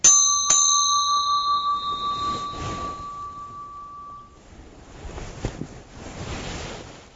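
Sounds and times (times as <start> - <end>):
newly cast bell struck and ringing: 0.0 - 4.5
soft rushing noise: 0.9 - 7.1.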